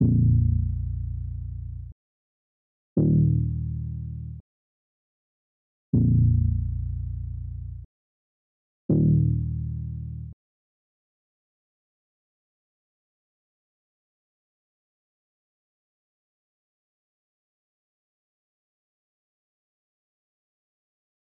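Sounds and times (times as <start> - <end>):
bass in A sharp minor: 0.0 - 2.0, 3.0 - 4.4, 6.0 - 7.9, 8.9 - 10.4.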